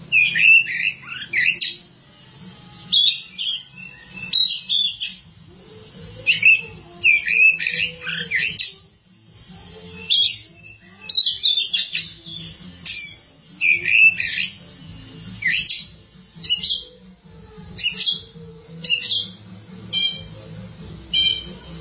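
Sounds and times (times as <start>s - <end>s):
Oriental magpie-robin singing whistles and scratchy notes: 0.0s - 1.9s, 2.9s - 5.3s, 6.2s - 8.9s, 9.8s - 17.0s, 17.7s - 20.4s, 21.1s - 21.7s.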